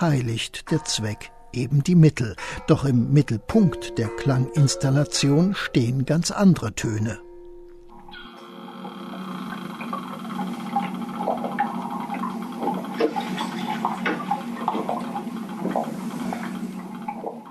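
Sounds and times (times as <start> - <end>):
speech: 0.0 - 7.3
underwater watery murmur recorded by hydrophones: 8.0 - 17.4.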